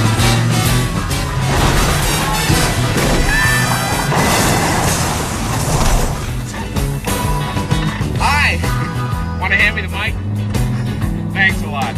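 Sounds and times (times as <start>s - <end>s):
crashing cars in a police car chase: 0.0s - 7.8s
police car chase engines roaring: 0.0s - 11.9s
screeching in a police car chase: 0.4s - 7.4s.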